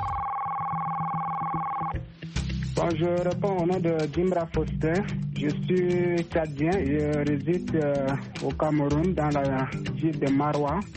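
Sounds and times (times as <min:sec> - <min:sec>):
telephone ringing with an electronic dual-pitch tone: 0:00.0 - 0:02.0
speech: 0:02.8 - 0:10.9.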